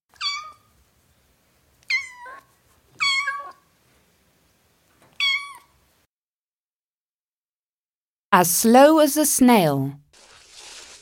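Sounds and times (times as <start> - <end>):
kitten meowing in short high-pitched descending cries: 0.1 - 0.7, 1.9 - 3.6, 5.2 - 5.7
speech: 8.3 - 10.0.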